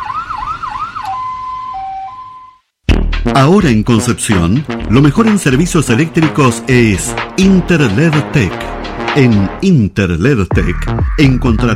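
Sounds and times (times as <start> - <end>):
ambulance siren: 0.0 - 2.7
speech: 3.2 - 11.7.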